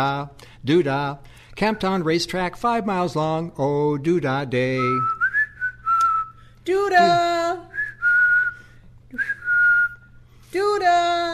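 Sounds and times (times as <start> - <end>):
speech: 0.0 - 5.2, 6.6 - 7.6, 9.1 - 9.4, 10.5 - 11.3
woman whistling a short melodic phrase: 4.9 - 10.2.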